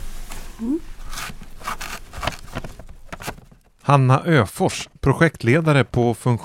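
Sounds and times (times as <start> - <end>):
speech: 0.6 - 1.0, 3.9 - 6.4
framed pictures flipped through inside a cardboard box: 1.0 - 3.8.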